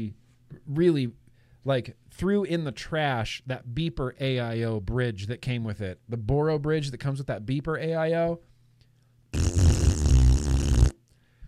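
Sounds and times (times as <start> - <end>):
speech: 0.0 - 8.5
raspberry blown with the lips as a fart imitation: 9.3 - 11.0.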